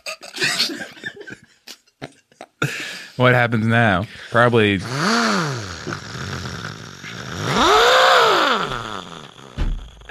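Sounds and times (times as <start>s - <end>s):
laughter: 0.0s - 2.7s
speech: 3.2s - 6.1s
motorcycle engine revving and idling roughly: 4.8s - 10.0s.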